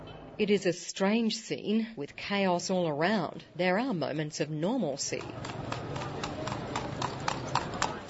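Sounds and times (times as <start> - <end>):
speech: 0.4 - 5.9
horse hooves clip-clopping on a hard street pulling a cart: 5.0 - 8.0.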